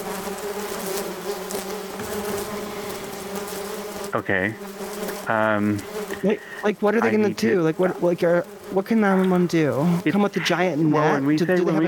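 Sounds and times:
many Africanized bees buzzing: 0.0s - 11.8s
speech: 4.1s - 11.8s
laughter: 6.0s - 7.8s, 10.0s - 11.8s.

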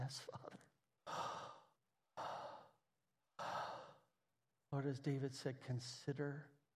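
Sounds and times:
speech: 0.1s - 1.2s, 4.7s - 6.6s
slow deep airy exhalations: 1.1s - 2.8s, 3.4s - 4.1s.

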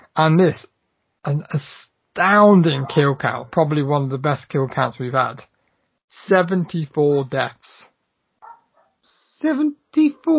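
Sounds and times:
speech: 0.2s - 5.5s, 6.1s - 7.9s, 9.4s - 10.3s
dogs barking and yipping: 2.7s - 3.3s, 8.4s - 9.0s.

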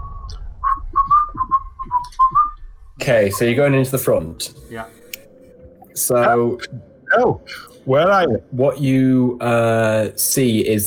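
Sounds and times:
person whistling a casual tune while walking into a shop: 0.0s - 2.6s
faint low rumbling: 0.0s - 10.8s
speech: 3.1s - 5.0s, 6.0s - 10.8s.

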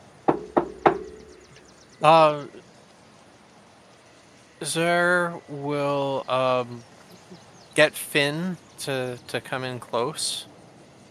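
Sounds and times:
knocking on a door: 0.3s - 1.4s
speech: 2.0s - 2.6s, 4.6s - 6.9s, 7.8s - 10.5s.

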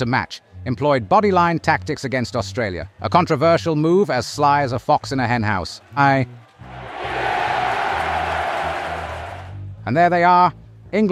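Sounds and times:
speech: 0.0s - 6.8s, 9.8s - 11.0s
loud sustained roar of many voices of a cricket crowd: 6.4s - 9.6s.

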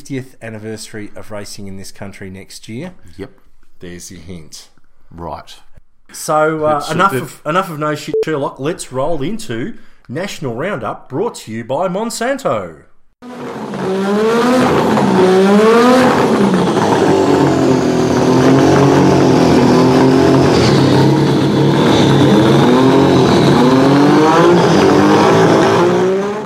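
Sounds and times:
speech: 0.1s - 17.2s
old turbocharged Formula One car engine revving: 13.3s - 26.4s.

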